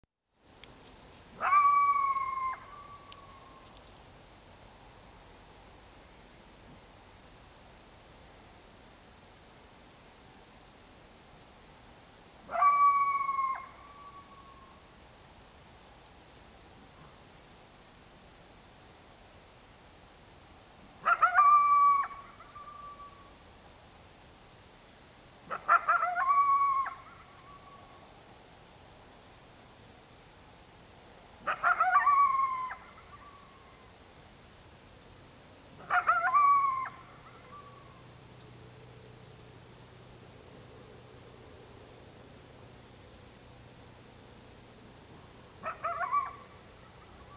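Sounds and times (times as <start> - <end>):
coyote at night: 0.6 - 4.4, 12.4 - 14.9, 21.0 - 23.5, 25.4 - 28.3, 31.4 - 47.3.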